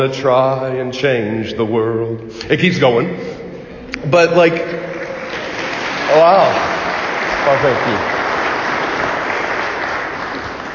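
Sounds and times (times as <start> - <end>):
speech: 0.0 - 3.4, 4.0 - 4.9, 6.1 - 6.8, 7.4 - 8.2
congregation applauding at a church mass: 4.8 - 10.7.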